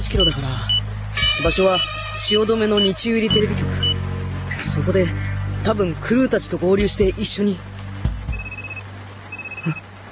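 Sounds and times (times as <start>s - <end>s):
speech: 0.0s - 0.8s, 1.4s - 3.9s, 4.6s - 7.7s, 9.6s - 9.8s
telephone ringing in short electronic bursts: 8.3s - 9.8s.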